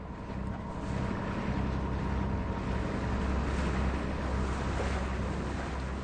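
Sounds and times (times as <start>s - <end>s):
boat engine droning aboard a boat on a river: 0.0s - 6.0s
rushing river water: 0.0s - 6.0s.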